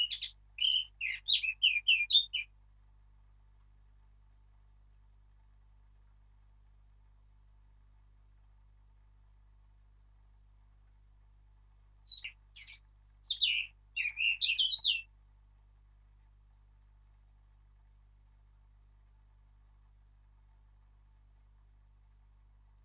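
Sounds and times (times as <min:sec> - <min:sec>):
Eurasian blackcap Sylvia atricapilla singing varied warbling notes: 0:00.0 - 0:02.4, 0:12.1 - 0:15.0.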